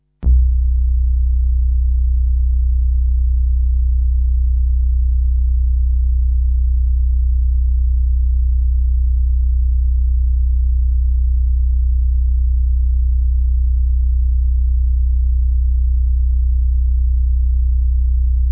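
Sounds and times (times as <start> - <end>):
static infra-low bass pads: 0.2 - 18.4.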